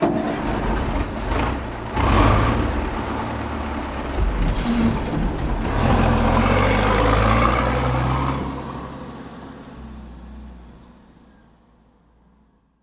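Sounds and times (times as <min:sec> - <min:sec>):
truck engine revving: 0:00.0 - 0:10.0.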